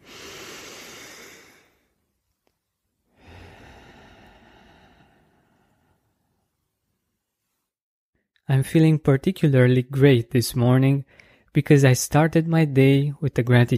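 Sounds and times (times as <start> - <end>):
deep breathing: 0.0 - 2.0, 3.1 - 6.5, 11.1 - 11.5
speech: 8.5 - 13.7.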